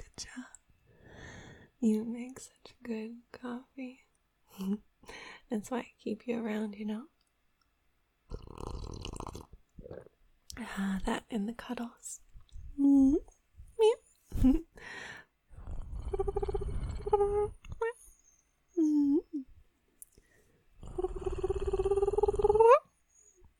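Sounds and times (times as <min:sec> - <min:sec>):
speech: 0:01.8 - 0:04.0, 0:05.5 - 0:07.1, 0:09.9 - 0:15.1
cat low rumbling purring: 0:08.3 - 0:10.1, 0:15.5 - 0:18.0, 0:20.8 - 0:22.8.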